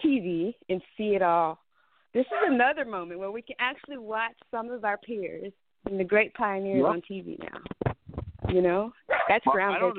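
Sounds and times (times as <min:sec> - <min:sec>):
speech: 0:01.0 - 0:07.8, 0:08.5 - 0:09.9
dog giving short barks: 0:02.3 - 0:02.6, 0:09.1 - 0:09.9.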